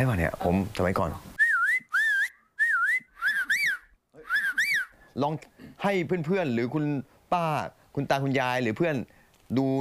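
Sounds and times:
speech: 0.0 - 1.3, 5.2 - 9.7
person whistling a wavering tune with lips: 1.4 - 5.0.

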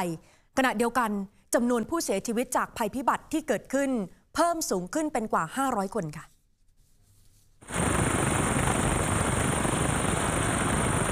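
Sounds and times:
speech: 0.0 - 6.3
helicopter rotor noise during a rescue: 7.6 - 11.1.

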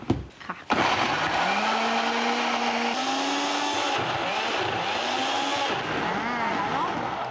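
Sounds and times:
electric blender blending vegetables, shiitake mushrooms and dried shrimp with water: 0.7 - 7.2.

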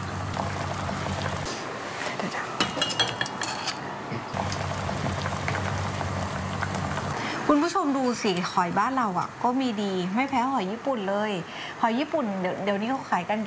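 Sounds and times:
pot boiling with young tamarind leaves added: 0.0 - 3.7, 4.3 - 11.4
light metallic clinks of utensils: 2.6 - 3.9
speech: 7.6 - 13.4.

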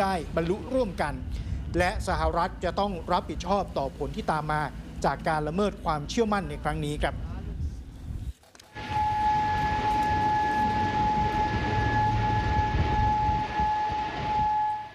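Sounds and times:
speech: 0.0 - 7.2
low rumbling city noise in Kuwait City: 0.0 - 14.9
air raid warning siren wailing in Kuwait City: 8.7 - 14.9.

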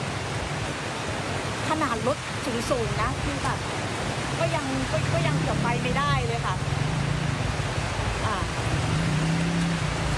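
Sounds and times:
heavy rain falling: 0.0 - 10.1
speech: 1.8 - 6.9
low droning rumble: 4.4 - 10.1.

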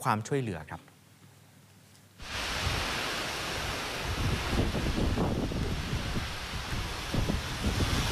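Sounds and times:
speech: 0.0 - 0.9
strong summer storm wind roaring and buffeting the microphone: 2.2 - 8.0.

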